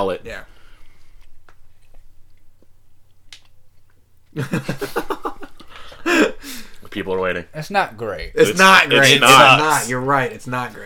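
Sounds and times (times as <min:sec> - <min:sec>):
speech: 0:00.0 - 0:00.5, 0:04.4 - 0:05.1, 0:06.9 - 0:10.8
person chewing food dipped in sauce: 0:01.0 - 0:04.4
laughter: 0:04.4 - 0:06.4.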